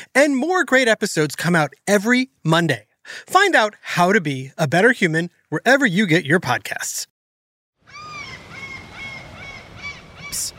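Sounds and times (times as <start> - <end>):
speech: 0.2 - 7.1
seagulls calling over a beach on a sunny day: 7.8 - 10.5
soft beach noise: 7.9 - 10.5.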